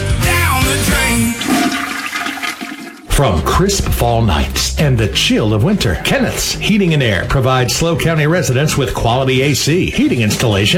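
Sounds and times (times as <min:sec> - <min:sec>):
toilet flushing: 0:01.1 - 0:03.3
speech: 0:03.2 - 0:10.7.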